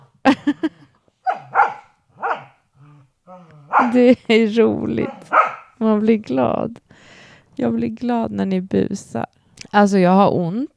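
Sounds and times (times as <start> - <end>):
dogs barking while playing: 1.2 - 2.6, 3.6 - 4.1, 5.0 - 5.8
dogs yelping and whining as they roughhouse: 1.2 - 4.1, 5.0 - 5.8
speech: 3.9 - 6.8, 7.6 - 10.7.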